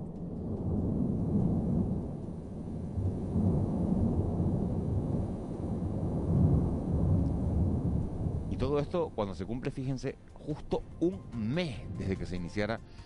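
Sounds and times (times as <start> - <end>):
erupting Cumbre Vieja volcano rumbling roar before dawn: 0.0 - 8.9
speech: 8.8 - 13.0.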